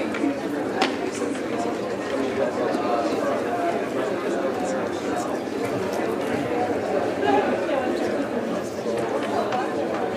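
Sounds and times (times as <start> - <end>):
calm crowd murmuring: 0.0 - 10.1.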